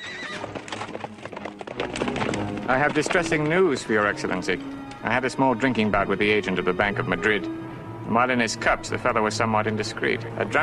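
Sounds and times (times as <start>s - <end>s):
carriage horse whinnying shrilly: 0.0s - 3.5s
carriage horse hooves clattering: 0.0s - 7.5s
speech: 2.7s - 10.6s.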